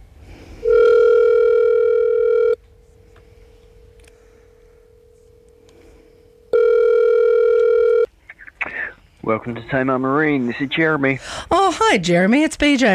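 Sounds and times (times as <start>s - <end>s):
phone line ringing tone over a phone connection: 0.6s - 2.6s, 6.5s - 8.1s
quieter steady tone on a phone line: 0.6s - 8.1s
speech: 9.4s - 12.9s.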